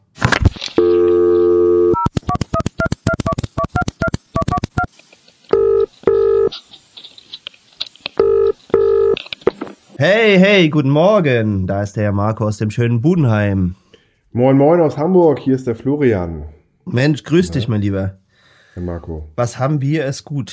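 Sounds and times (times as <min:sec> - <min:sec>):
telephone dial tone: 0:00.8 - 0:02.1, 0:05.5 - 0:06.5, 0:08.2 - 0:09.2
touch-tone telephone keypad beeps: 0:01.8 - 0:04.9
speech: 0:10.0 - 0:18.2, 0:18.8 - 0:20.5.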